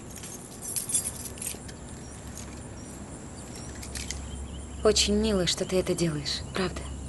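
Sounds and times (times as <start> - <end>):
car keys jangling: 0.0 - 2.7, 3.4 - 4.2
speech: 4.8 - 6.9.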